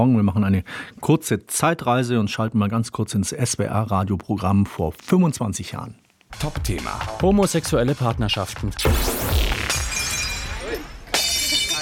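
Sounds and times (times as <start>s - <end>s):
speech: 0.0s - 9.5s
porcelain smashing at a pre-wedding party in Berlin: 9.2s - 11.8s.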